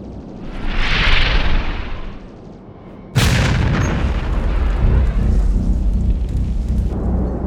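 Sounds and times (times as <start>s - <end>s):
torpedo explosion in a direct hit with heavy rumbling roar: 0.0s - 6.4s
torpedo rushing whoosh: 0.2s - 3.1s.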